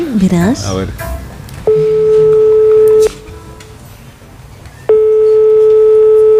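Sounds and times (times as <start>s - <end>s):
faint noise: 0.0s - 6.3s
speech: 0.2s - 2.3s
telephone ringback tone from a test call to a mobile phone: 1.7s - 3.2s, 4.9s - 6.3s.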